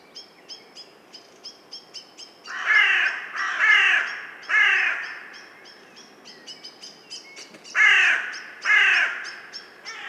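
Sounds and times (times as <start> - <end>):
carrion crow cawing: 2.5 - 5.4, 7.8 - 10.0.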